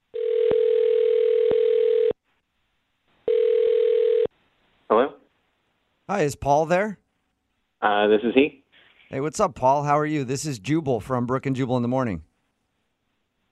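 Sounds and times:
phone ringing tone: 0.1 - 2.2, 3.3 - 4.3
speech: 6.1 - 7.0, 7.8 - 12.3.

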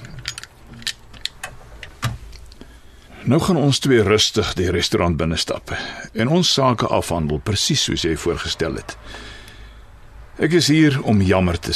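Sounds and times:
pistol sharp metallic clicks in car glove compartment: 0.0 - 2.6
speech: 3.2 - 9.4, 10.4 - 11.7.

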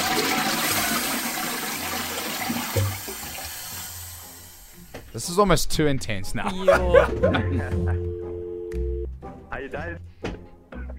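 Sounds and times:
toilet flushing: 0.0 - 4.9
speech: 5.2 - 8.1, 9.7 - 10.1
laughter: 6.4 - 8.2.

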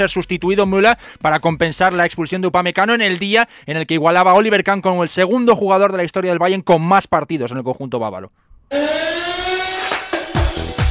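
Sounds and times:
speech: 0.0 - 9.1
loud horn-like siren wailing: 8.7 - 10.6.

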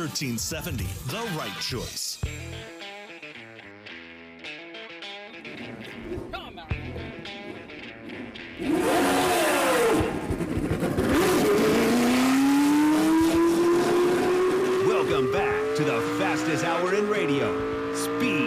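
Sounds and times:
speech: 0.0 - 2.7
black and gold Lotus 78-79 race car engine firing up on a track: 8.6 - 18.4.

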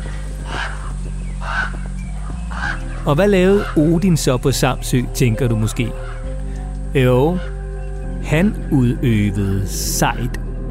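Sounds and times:
ravens cawing: 0.0 - 7.8
speech: 3.0 - 6.2, 6.9 - 7.5, 8.3 - 10.4.

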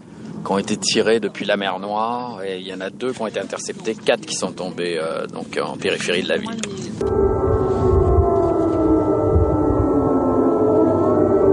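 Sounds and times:
speech: 0.4 - 8.0
air raid sirens warning of a missile launch: 7.0 - 11.5.

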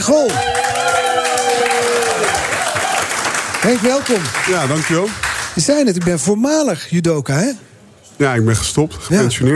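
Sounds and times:
speech: 0.0 - 0.7, 3.6 - 9.5
studio audience applauding: 0.0 - 6.3
studio audience cheering and whooping: 0.2 - 3.4.

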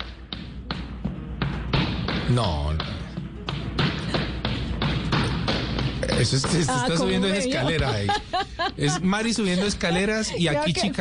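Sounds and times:
flamenco zapateado footwork stomping on the floor: 0.0 - 7.4
speech: 2.3 - 2.9, 6.2 - 10.9
people laughing: 6.5 - 10.8.

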